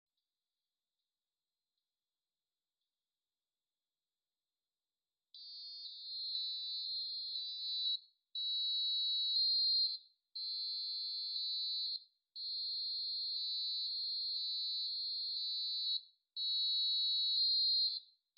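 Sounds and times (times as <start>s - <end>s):
filtered buzzer march: 5.4s - 17.9s.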